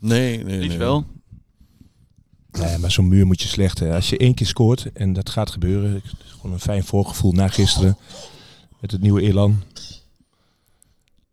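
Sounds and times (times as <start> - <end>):
speech: 0.0 - 1.2, 2.6 - 10.0
single loud harsh cough: 7.5 - 8.6.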